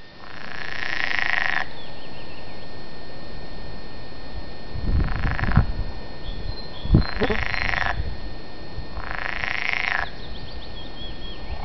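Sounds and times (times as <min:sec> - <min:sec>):
frog croaking low and rumbling: 0:00.2 - 0:01.9, 0:04.9 - 0:05.7, 0:06.3 - 0:08.2, 0:08.9 - 0:11.6.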